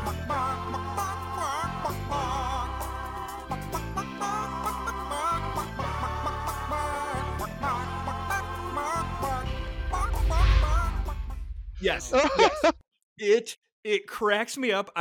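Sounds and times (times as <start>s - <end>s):
bouncy pop tune with steady beat and bass: 0.0s - 12.7s
speech: 11.8s - 14.9s
laughter: 11.9s - 12.8s.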